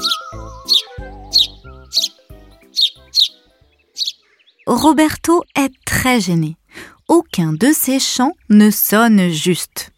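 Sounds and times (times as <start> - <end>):
soft musical accompaniment: 0.0 - 5.4
sparrows chirping: 0.0 - 9.9
speech: 4.7 - 9.9.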